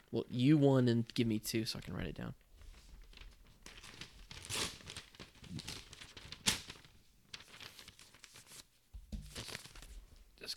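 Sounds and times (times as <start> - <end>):
speech: 0.1 - 2.4
paper for writing down votes crinkling and crumpling: 2.6 - 10.2
paper tearing: 3.7 - 8.6.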